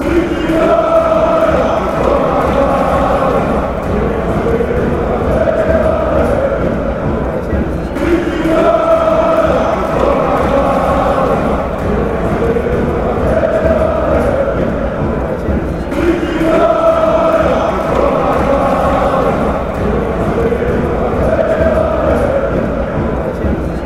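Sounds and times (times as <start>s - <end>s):
football crowd chanting: 0.0s - 23.8s.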